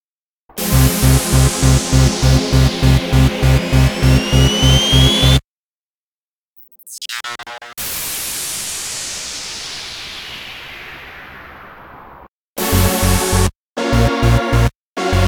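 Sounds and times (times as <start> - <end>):
background music: 0.6 - 5.4, 12.6 - 15.2.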